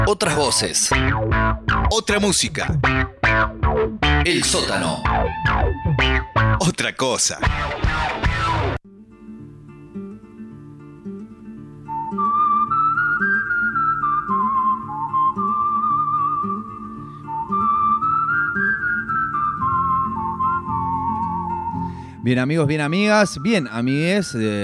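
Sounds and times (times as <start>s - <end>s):
speech: 0.1s - 5.8s, 6.6s - 8.6s, 22.2s - 24.6s
whistled melody in film music: 11.8s - 24.6s.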